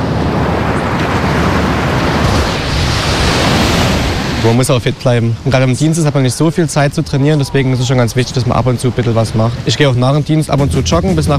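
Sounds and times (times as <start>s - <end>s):
surf washing onto a sea beach: 0.0s - 11.3s
speech: 4.4s - 11.3s.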